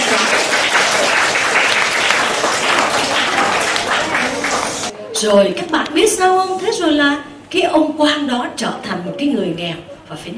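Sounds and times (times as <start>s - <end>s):
crowd applauding: 0.0s - 5.0s
speech: 5.2s - 10.3s.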